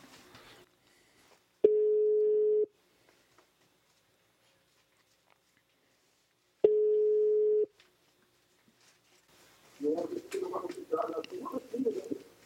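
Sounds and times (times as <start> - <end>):
telephone ringback tone of an outgoing call: 1.7 - 2.7, 6.7 - 7.7
person answering a telephone and talking: 9.8 - 12.4.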